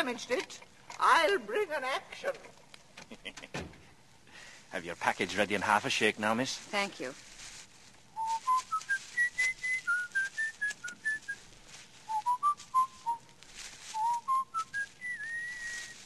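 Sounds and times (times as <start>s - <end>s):
speech: 0.0s - 3.8s, 4.7s - 7.3s
faint hiss: 0.0s - 16.0s
person whistling a song tune: 8.2s - 11.4s, 12.1s - 13.2s, 14.0s - 16.0s.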